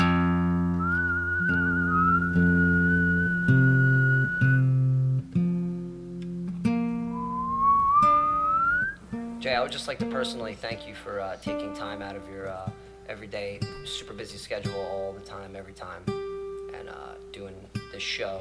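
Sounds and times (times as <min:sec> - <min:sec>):
steady chord-like instrumental backing: 0:00.0 - 0:09.4
person whistling a sustained wavering melody with vibrato: 0:00.8 - 0:04.7, 0:07.1 - 0:09.0
speech: 0:09.6 - 0:18.3.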